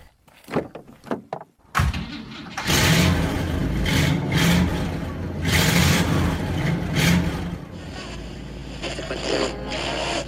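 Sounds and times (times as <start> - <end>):
big Chevrolet car engine revving: 2.5 - 10.2.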